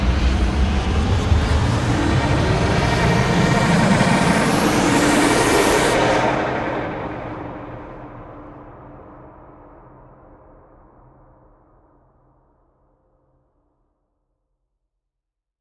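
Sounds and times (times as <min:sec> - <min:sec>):
long organic reverse swell riser stinger: 0:00.2 - 0:07.4.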